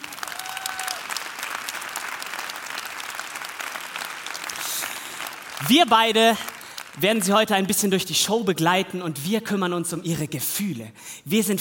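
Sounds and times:
audience applause at a show: 0:00.0 - 0:07.3
speech: 0:05.6 - 0:11.6.

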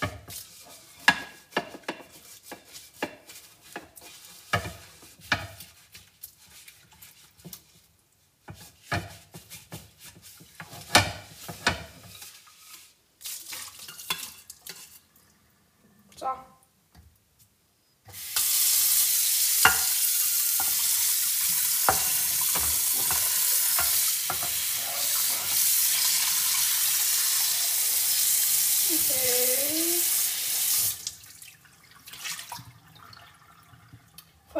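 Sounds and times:
water hissing and sizzling on a hot frying pan surface: 0:00.0 - 0:07.8, 0:08.5 - 0:15.1, 0:18.1 - 0:31.4
metal scraping and stirring in a hot frying pan: 0:00.0 - 0:15.1, 0:18.4 - 0:28.0.

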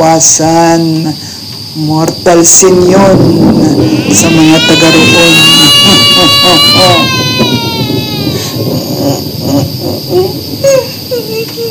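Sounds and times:
speech: 0:00.0 - 0:07.9
child wailing and sobbing: 0:03.8 - 0:09.2, 0:10.2 - 0:11.6.

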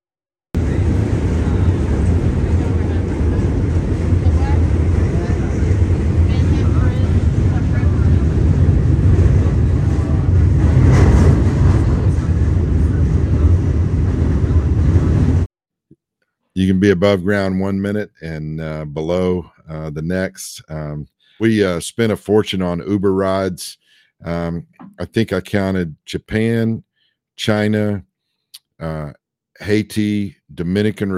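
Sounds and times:
New York subway train rumbling: 0:00.6 - 0:15.5
speech: 0:16.7 - 0:28.1, 0:28.8 - 0:31.1.

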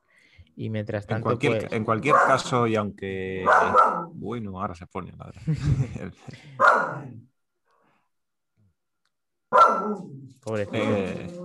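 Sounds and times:
speech: 0:00.6 - 0:07.3, 0:09.9 - 0:11.4
dog bark from outside: 0:02.0 - 0:02.6, 0:03.4 - 0:04.2, 0:06.5 - 0:07.2, 0:09.5 - 0:10.2
laughter: 0:05.3 - 0:06.6.

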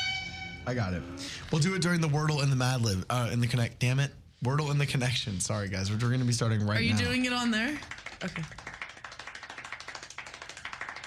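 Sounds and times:
speech: 0:00.7 - 0:08.6
fast steady hand clapping: 0:07.7 - 0:11.0.

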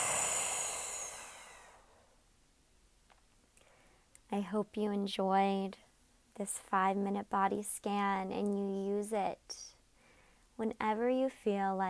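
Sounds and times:
long deep slow breath in and out: 0:00.0 - 0:02.2, 0:09.9 - 0:10.5
speech: 0:04.3 - 0:05.8, 0:06.4 - 0:09.7, 0:10.6 - 0:11.8.

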